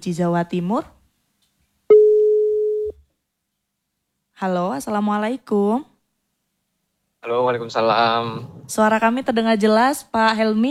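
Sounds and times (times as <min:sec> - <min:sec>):
speech: 0:00.0 - 0:01.0, 0:04.4 - 0:05.9, 0:07.2 - 0:10.6
telephone call tone while dialing out on a live phone-in line: 0:01.9 - 0:03.0.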